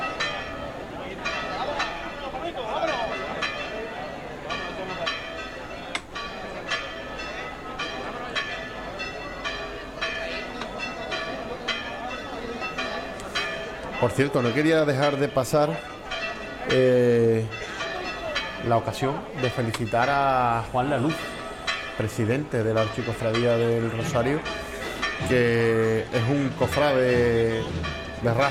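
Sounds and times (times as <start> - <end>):
church bells pealing: 0.0 - 28.4
crowd murmuring: 0.0 - 28.4
speech: 14.0 - 15.9, 16.7 - 17.6, 18.6 - 21.3, 22.0 - 24.6, 25.2 - 28.4.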